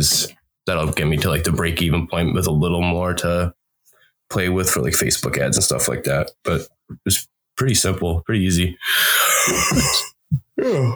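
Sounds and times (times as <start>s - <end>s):
speech: 0.0s - 3.6s, 4.3s - 10.9s
long breathy yawn with groaning voice: 8.8s - 10.9s.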